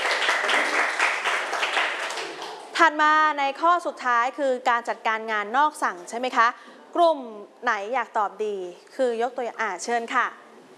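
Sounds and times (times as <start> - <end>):
students in a classroom clapping: 0.0 - 2.8
speech: 2.8 - 10.4.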